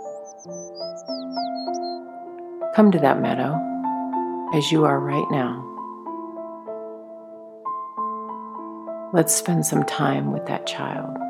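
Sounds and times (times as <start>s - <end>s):
birds chirping and tweeting: 0.0s - 6.0s
soft sustained musical tones changing chord: 0.0s - 11.2s
speech: 2.8s - 3.7s, 4.5s - 5.7s, 9.1s - 11.2s.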